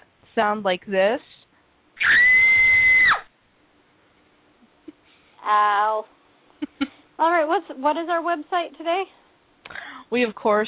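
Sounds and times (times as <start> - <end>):
speech: 0.4 - 1.4, 5.5 - 6.2, 7.2 - 9.2, 10.1 - 10.6
woman screaming high-pitched: 2.0 - 3.3.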